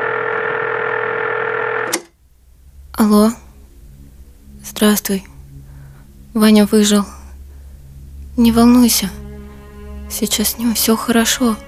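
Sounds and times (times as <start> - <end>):
telephone line tone during reconnection: 0.0 - 2.0
sharp click: 1.9 - 2.2
speech: 3.0 - 3.4, 4.8 - 5.3, 6.3 - 7.2, 8.4 - 9.2, 10.1 - 11.6.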